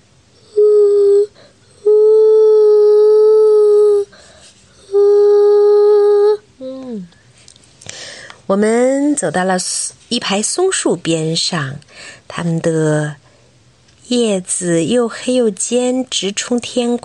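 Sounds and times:
human voice imitating great horned owl hoots: 0.4s - 4.1s, 4.8s - 7.2s
speech: 8.5s - 13.2s, 14.1s - 17.0s.

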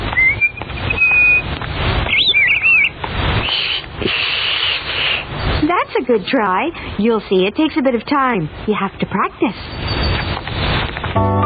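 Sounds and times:
birds chirping and calling with whistled notes and warbling: 0.0s - 3.9s
steady rustling hiss of outdoor noise: 0.0s - 11.4s
speech: 6.0s - 9.8s.

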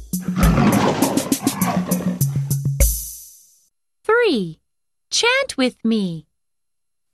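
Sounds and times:
tiger roaring with rasping growl pulses: 0.1s - 2.7s
speech: 5.2s - 6.3s.

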